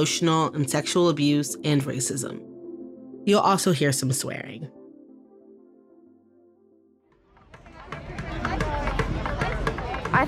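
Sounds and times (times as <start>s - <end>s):
speech: 0.0s - 2.5s, 3.2s - 4.8s
babble of many voices outside a touring show's stop in Houston Texas: 7.4s - 10.2s.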